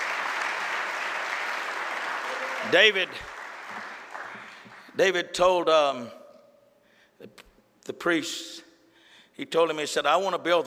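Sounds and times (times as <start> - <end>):
large crowd clapping: 0.0 - 5.2
speech: 2.7 - 3.8, 5.0 - 6.2, 7.2 - 8.7, 9.4 - 10.6.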